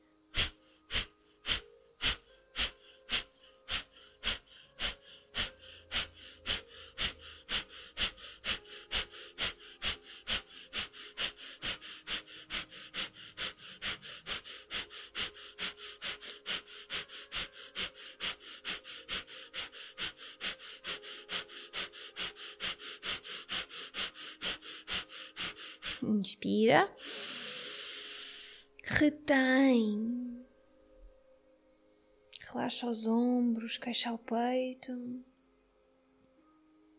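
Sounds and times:
rhythmic forceful breathing through the nose during a breathing exercise: 0:00.0 - 0:26.2, 0:26.9 - 0:28.8
speech: 0:26.2 - 0:27.0, 0:29.0 - 0:30.1, 0:32.8 - 0:35.3.

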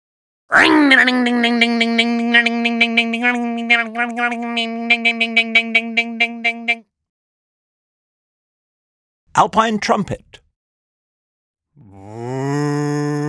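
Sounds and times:
person vocally imitating a motorbike starting: 0:00.5 - 0:06.8, 0:11.8 - 0:13.2
speech: 0:00.6 - 0:06.9, 0:09.4 - 0:10.4.

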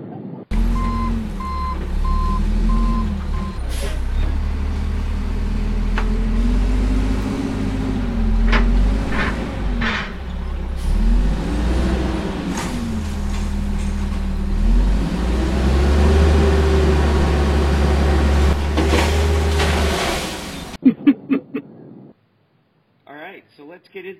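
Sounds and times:
heavy truck diesel engine rumbling: 0:00.5 - 0:20.8
high reversing beeps of a heavy truck: 0:00.7 - 0:03.6.

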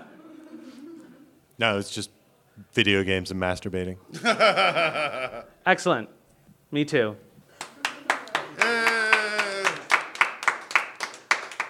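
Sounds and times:
speech: 0:01.6 - 0:07.3
laughter: 0:04.1 - 0:05.5, 0:07.8 - 0:10.0
small group clapping: 0:07.5 - 0:11.6
person cheering: 0:08.4 - 0:10.1.

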